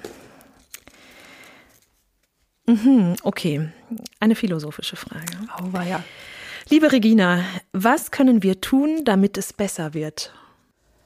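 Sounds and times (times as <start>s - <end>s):
paper question slips crinkling: 0.0s - 2.6s
speech: 2.7s - 10.4s.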